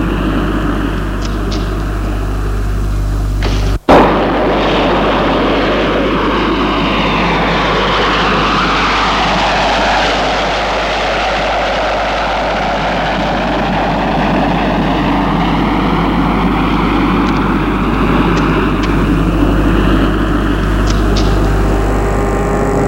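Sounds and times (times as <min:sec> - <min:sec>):
small private propeller airplane landing at an airport near Lyon France: 0:00.0 - 0:22.8
sharp click: 0:01.2 - 0:01.9, 0:20.8 - 0:21.5.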